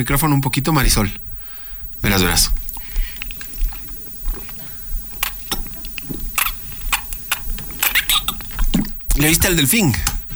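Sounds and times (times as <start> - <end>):
speech: 0.0 - 1.3, 2.0 - 2.6, 9.2 - 10.2
wet mouth clicks and smacks: 2.5 - 9.4
person gulping and sipping water into a microphone: 2.6 - 9.1.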